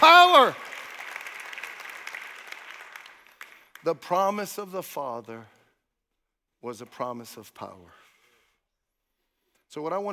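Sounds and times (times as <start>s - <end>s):
church congregation clapping along during a worship service: 0.0s - 4.7s
speech: 0.4s - 0.7s, 3.8s - 5.6s, 6.6s - 8.0s, 9.7s - 10.1s.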